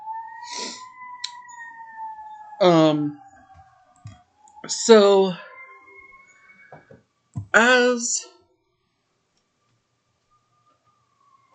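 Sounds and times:
emergency vehicle sirens passing: 0:00.0 - 0:08.0, 0:10.7 - 0:11.5
speech: 0:02.6 - 0:03.2, 0:04.7 - 0:05.4, 0:07.6 - 0:08.3.

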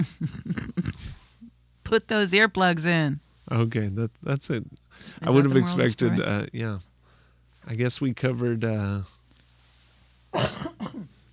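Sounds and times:
speech: 0:00.0 - 0:00.5, 0:01.9 - 0:06.9, 0:07.6 - 0:09.2
person coughing: 0:10.4 - 0:11.1.

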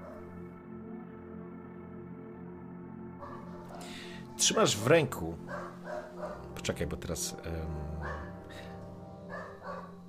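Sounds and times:
dog barking: 0:00.0 - 0:00.3, 0:03.2 - 0:03.9, 0:05.5 - 0:06.5, 0:08.0 - 0:08.5, 0:09.3 - 0:10.0
speech: 0:03.8 - 0:05.6, 0:06.6 - 0:08.7.

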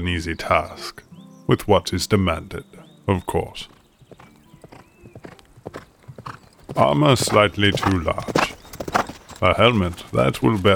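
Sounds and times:
speech: 0:00.0 - 0:03.8, 0:06.8 - 0:08.5, 0:09.4 - 0:10.7
horse hooves clip-clopping: 0:03.7 - 0:10.7.

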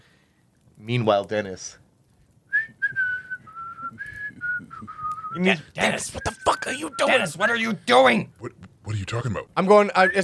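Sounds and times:
speech: 0:00.8 - 0:01.8, 0:05.4 - 0:10.2
person whistling a slow, wavering tune: 0:02.5 - 0:05.4, 0:06.1 - 0:07.3.

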